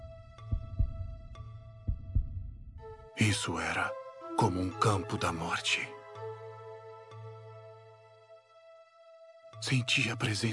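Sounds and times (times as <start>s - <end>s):
heartbeat thumping in lub-dub pairs: 0.4s - 3.0s
speech: 3.2s - 6.0s, 9.7s - 10.5s.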